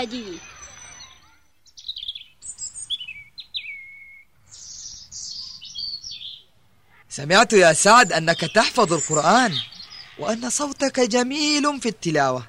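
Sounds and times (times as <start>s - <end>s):
speech: 0.0s - 0.6s, 7.2s - 12.4s
small caged birds at a zoo chirping: 0.0s - 12.4s.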